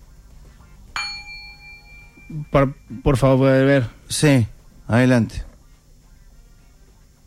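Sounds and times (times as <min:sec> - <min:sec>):
soft steady hiss: 0:00.0 - 0:07.2
small gong struck: 0:01.0 - 0:03.2
speech: 0:02.3 - 0:05.5.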